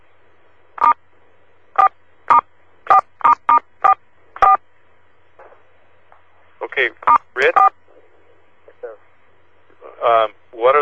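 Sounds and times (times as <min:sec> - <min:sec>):
telephone keypad tones pressing star four: 0:01.8 - 0:04.6
speech: 0:06.8 - 0:07.7.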